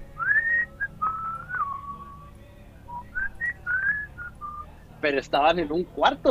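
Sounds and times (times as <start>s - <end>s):
person whistling a short melody: 0.1s - 2.3s, 2.9s - 4.8s
speech: 5.0s - 6.2s.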